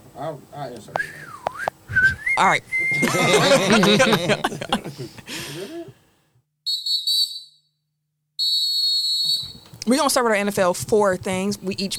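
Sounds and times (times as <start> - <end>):
speech: 0.2 - 6.0, 9.9 - 11.9
whistle blown in loud, shrill blasts: 1.0 - 3.2, 6.6 - 7.8, 8.4 - 9.8
people laughing: 2.0 - 6.0.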